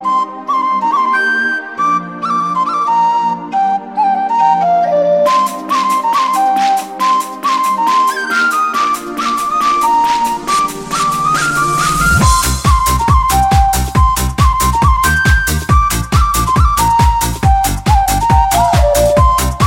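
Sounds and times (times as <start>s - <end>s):
flute: 0.0s - 19.6s
bass: 10.7s - 19.6s.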